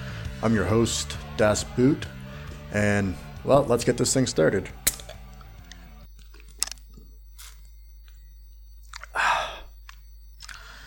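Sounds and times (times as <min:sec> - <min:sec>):
speech: 0:00.4 - 0:04.8
beer being opened with a sharp metallic crack: 0:04.8 - 0:05.2
small clicks: 0:04.9 - 0:07.0, 0:09.8 - 0:10.8.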